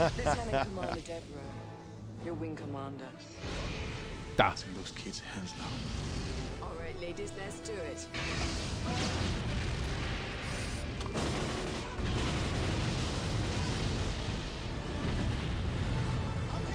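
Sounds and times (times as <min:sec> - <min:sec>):
laughter: 0:00.0 - 0:01.2
speech: 0:00.0 - 0:01.6, 0:02.2 - 0:03.8, 0:04.4 - 0:06.4, 0:07.0 - 0:09.7
film explosion roaring: 0:05.7 - 0:06.6, 0:08.2 - 0:16.7.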